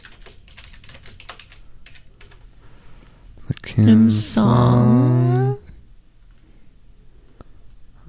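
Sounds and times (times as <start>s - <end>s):
typing on a computer keyboard: 0.0s - 2.4s
speech: 3.7s - 5.4s.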